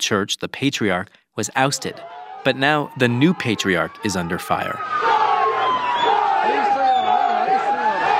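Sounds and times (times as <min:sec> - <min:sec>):
speech: 0:00.0 - 0:05.2
dense crowd of protesters shouting and yelling: 0:01.7 - 0:08.1
rising wavering cries: 0:01.8 - 0:08.1.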